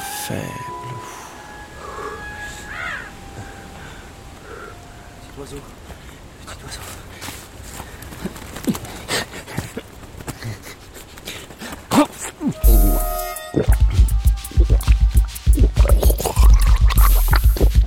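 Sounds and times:
horse hooves clopping: 6.8s - 17.8s.

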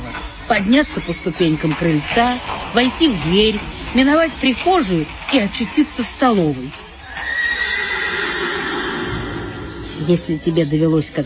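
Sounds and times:
speech: 0.5s - 6.8s, 10.1s - 11.2s
horse neighing: 7.1s - 10.1s.

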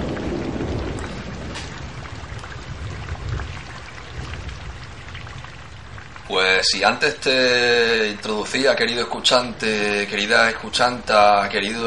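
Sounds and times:
thunder rumbling: 0.0s - 7.3s
rain falling steadily: 0.0s - 11.8s
speech: 6.3s - 11.8s.

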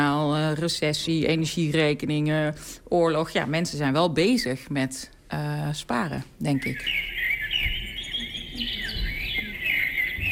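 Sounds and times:
speech: 0.6s - 7.7s
birdsong played by a sensor-triggered birdhouse gadget: 6.4s - 10.3s.

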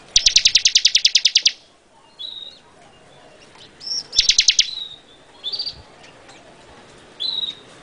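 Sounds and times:
bar-winged prinia song with rattling series of ticks: 0.1s - 1.6s
bar-winged prinia brief high whistled notes: 0.1s - 2.6s, 3.8s - 5.8s.

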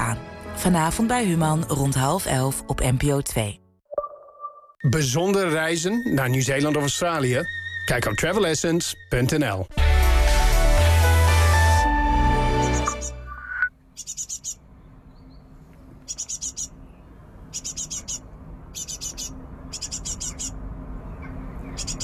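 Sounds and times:
music: 0.0s - 3.8s, 5.9s - 13.4s
speech: 0.2s - 3.6s, 4.8s - 9.9s
great tit chicks calling in a nest box on a balcony: 12.5s - 22.0s.

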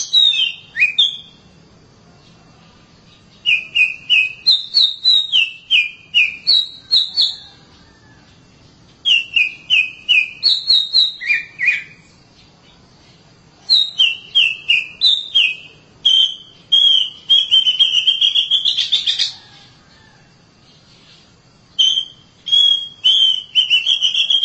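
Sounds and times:
Oriental magpie-robin song: 0.0s - 1.5s, 3.0s - 19.4s, 21.8s - 24.4s.

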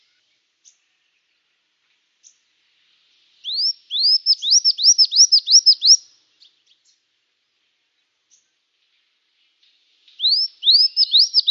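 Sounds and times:
brown-throated sunbird singing: 3.4s - 6.1s, 10.2s - 11.5s.

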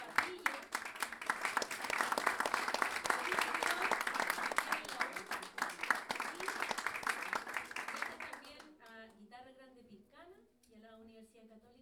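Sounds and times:
audience applause at an evening improvisation event in Chile: 0.0s - 8.5s.

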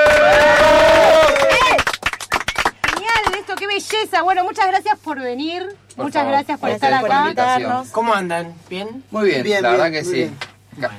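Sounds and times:
crowd cheering welcoming a rockabilly band into a studio: 0.0s - 3.4s
scattered clapping welcoming a rockabilly band into a studio: 0.0s - 4.1s
speech: 4.0s - 10.9s.

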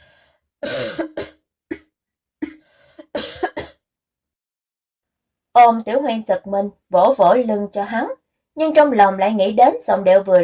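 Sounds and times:
man coughing: 0.6s - 1.4s, 3.2s - 3.8s
speech: 5.6s - 10.4s.

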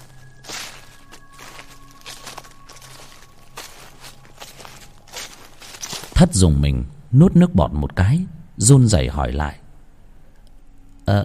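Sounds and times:
footsteps on forest ground snapping dry twigs: 0.0s - 6.2s
faint steady low hum: 0.0s - 11.2s
speech: 6.2s - 9.6s.

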